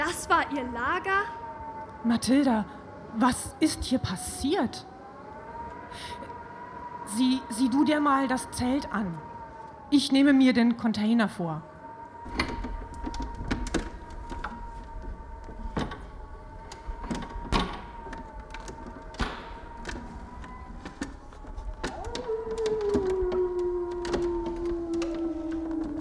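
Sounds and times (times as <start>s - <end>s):
speech: 0.0s - 1.4s, 2.0s - 4.9s, 5.9s - 6.3s, 7.1s - 9.3s, 9.9s - 11.7s
wolves howling: 0.0s - 10.5s, 11.4s - 25.9s
faint clicks and knocks: 12.3s - 25.9s.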